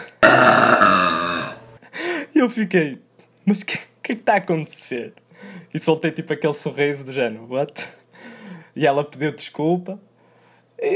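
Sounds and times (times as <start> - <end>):
long loud deep croaky burp: 0.0 - 1.7
speech: 2.4 - 10.1, 10.8 - 10.9.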